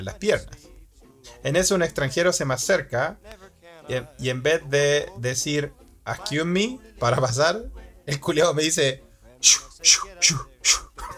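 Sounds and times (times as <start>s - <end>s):
speech: 0.0s - 0.7s, 1.3s - 11.1s
person in an airplane aisle imitating dog yelping barks: 9.4s - 11.1s.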